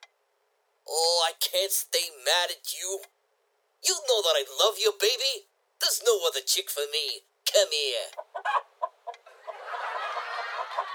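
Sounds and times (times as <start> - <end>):
speech: 0.9 - 3.2, 3.8 - 8.7
chicken clucking and squawking: 8.1 - 9.6
laughter: 9.3 - 10.9.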